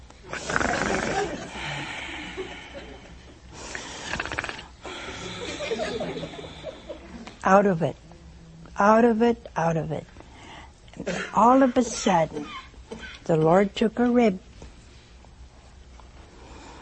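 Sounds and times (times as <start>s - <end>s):
voice imitating a man snoring loudly with raspy inhales and snorts: 0.3s - 1.8s, 3.9s - 5.4s
laughter: 0.6s - 3.4s, 5.0s - 7.3s
speech: 7.4s - 8.0s, 8.8s - 10.1s, 11.0s - 12.6s, 13.3s - 14.5s.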